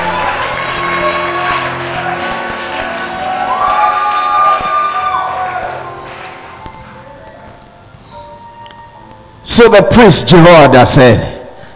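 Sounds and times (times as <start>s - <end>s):
audience shouting amen together: 0.0s - 5.8s
speech: 9.6s - 11.3s.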